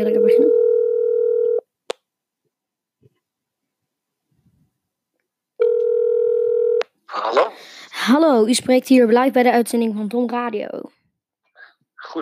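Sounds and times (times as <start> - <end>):
telephone dial tone: 0.2 - 1.6, 5.6 - 6.8
speech: 8.4 - 11.0.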